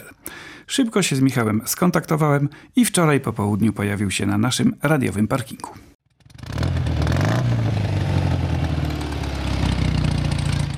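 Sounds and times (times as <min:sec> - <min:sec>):
speech: 0:00.7 - 0:05.9
old sidecar motorcycle engine starting and running: 0:06.1 - 0:10.7.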